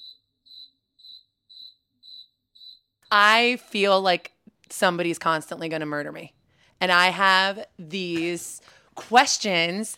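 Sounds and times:
cricket chirping: 0.0 - 3.0
speech: 3.1 - 9.9.

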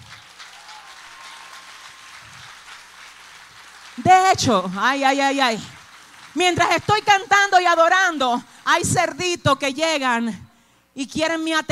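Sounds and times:
audience applause: 0.0 - 7.5
speech: 4.0 - 5.8, 6.4 - 10.4, 11.0 - 11.7.

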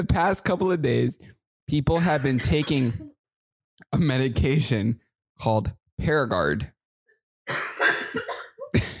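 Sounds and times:
speech: 0.0 - 3.1, 3.8 - 6.8, 7.5 - 7.8
woman coughing: 2.0 - 3.2, 7.5 - 8.9.

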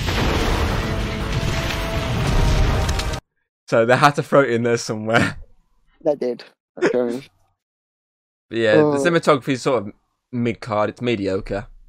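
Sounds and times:
explosion boom with rolling low rumble: 0.0 - 3.2
speech: 3.7 - 5.4, 6.0 - 7.4, 8.5 - 11.7.

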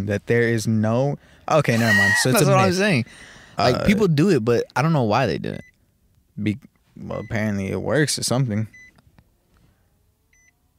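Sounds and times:
speech: 0.0 - 5.7, 6.4 - 8.8
laughter: 1.7 - 3.0
car dashboard chiming with short electronic beeps: 8.7 - 9.0, 10.3 - 10.6.

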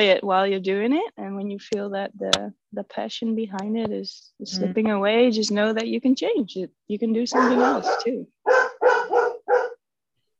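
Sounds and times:
speech: 0.0 - 8.7
dogs barking: 7.3 - 9.9.

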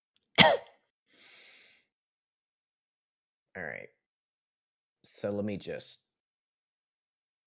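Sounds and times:
short soft throaty cough: 0.4 - 0.7
speech: 3.6 - 4.0, 5.0 - 6.0.

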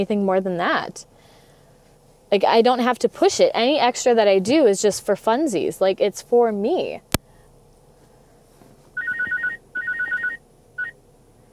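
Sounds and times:
speech: 0.0 - 1.3, 2.3 - 7.1
phone ringtone from an incoming call: 9.0 - 11.0.

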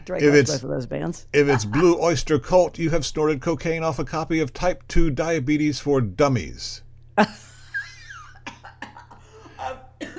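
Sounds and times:
speech: 0.0 - 7.5
person coughing in short harsh bursts: 8.1 - 10.1.

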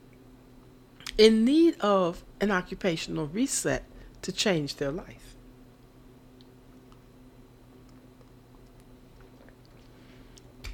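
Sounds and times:
speech: 1.2 - 5.4
person sipping water: 7.7 - 10.6.

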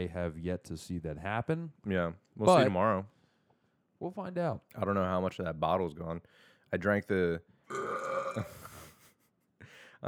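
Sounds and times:
speech: 0.0 - 3.2, 4.0 - 8.6
long deep burp: 7.7 - 8.8.

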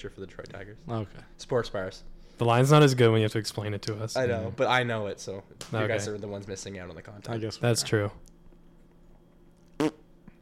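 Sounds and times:
speech: 0.0 - 8.3
fart into the microphone: 9.8 - 10.1.

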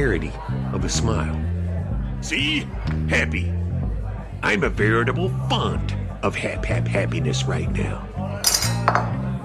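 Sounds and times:
speech: 0.0 - 1.6, 2.2 - 3.6, 4.4 - 8.1
cutlery dropped clattering on dishes: 8.4 - 9.3.

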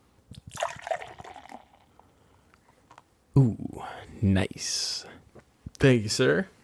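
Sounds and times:
beer poured aggressively into a glass: 0.4 - 2.1
speech: 3.4 - 5.1, 5.8 - 6.6.

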